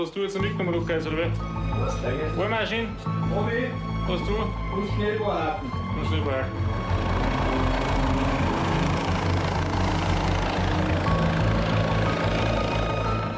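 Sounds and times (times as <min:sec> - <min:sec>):
speech: 0:00.0 - 0:07.7
helicopter rotor and engine roaring overhead: 0:03.8 - 0:13.3.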